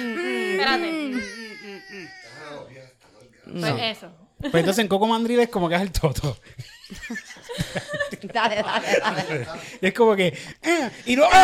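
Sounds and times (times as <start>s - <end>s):
voice imitating a fussing baby refusing food: 0.0s - 2.4s
speech: 0.6s - 1.4s, 3.5s - 11.4s
laughter: 0.7s - 2.4s, 6.6s - 9.8s.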